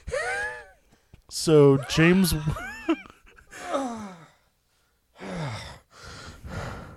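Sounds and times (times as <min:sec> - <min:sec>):
speech: 0:01.3 - 0:03.0
heavy effortful breathing while taking off a robe: 0:03.5 - 0:06.9.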